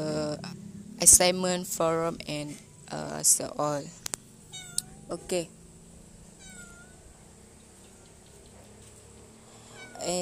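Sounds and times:
low hum: 0.0 - 10.1
speech: 1.0 - 4.0, 5.1 - 5.6
cat meowing outside in front of a house in a village: 4.5 - 5.2, 6.3 - 7.1, 9.6 - 10.1.

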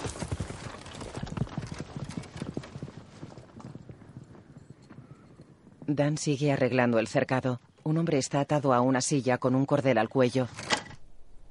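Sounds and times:
horse hooves as a rider leaves on horseback: 0.0 - 8.1
speech: 5.9 - 10.6.

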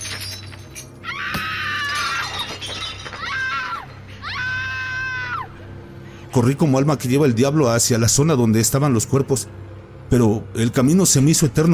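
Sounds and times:
glass shattering: 0.0 - 4.2
loud drawn-out high-pitched screams: 1.0 - 2.4, 3.1 - 5.6
speech: 6.4 - 11.7.

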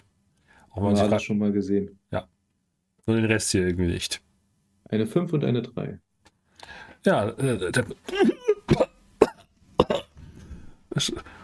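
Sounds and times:
speech: 0.8 - 2.4, 3.1 - 4.2, 4.9 - 6.0, 6.6 - 8.8, 11.0 - 11.4
rough raspy breath: 6.5 - 7.0, 10.2 - 11.4
person coughing harshly: 8.1 - 10.2.

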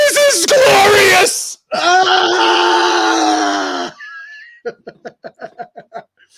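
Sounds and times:
man screaming in pain: 0.0 - 4.1
laughter: 4.0 - 6.2.

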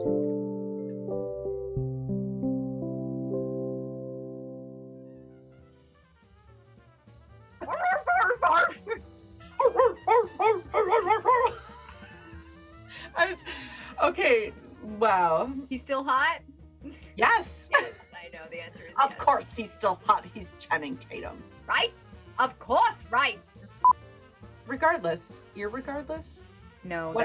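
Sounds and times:
short musical intro: 0.0 - 5.9
human voice imitating a barking dog: 7.6 - 9.0, 9.6 - 11.6
laughter: 7.6 - 9.0, 11.0 - 12.4, 17.7 - 19.2
speech: 15.0 - 16.4, 17.2 - 17.6, 19.0 - 23.5, 24.7 - 27.2.

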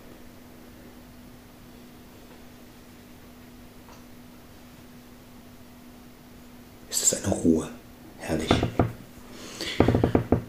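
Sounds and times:
speech: 7.0 - 8.8
wooden table creaking under shifting weight: 8.5 - 9.0, 9.8 - 10.4.

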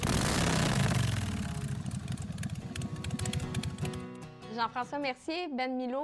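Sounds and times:
motorcycle engine starting and idling: 0.0 - 4.2
speech: 4.6 - 6.0.

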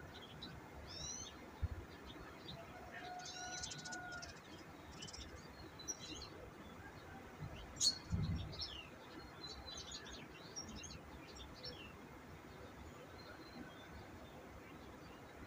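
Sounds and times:
birds calling and chirping outdoors: 0.0 - 15.4.

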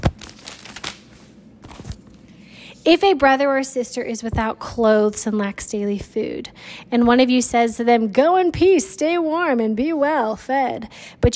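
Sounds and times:
book page being turned: 0.0 - 2.3
speech: 2.8 - 11.3.

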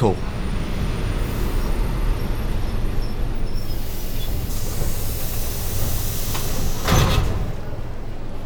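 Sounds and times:
speech: 0.0 - 0.3
train arriving at platform with heavy rumble and mechanical whine: 0.0 - 8.4
hiss of train air brakes or doors: 1.1 - 7.7.

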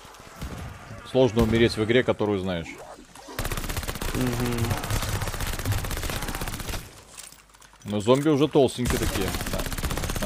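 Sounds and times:
speech: 1.1 - 2.9, 4.2 - 4.8, 7.9 - 10.2
Sten submachine gun firing automatic burst in a video game zombie mode: 3.4 - 7.0, 8.8 - 10.2.

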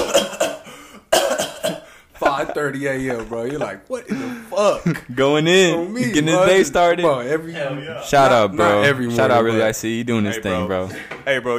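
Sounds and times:
harsh coughing after hitting a bong: 0.0 - 2.1
speech: 2.4 - 11.5.

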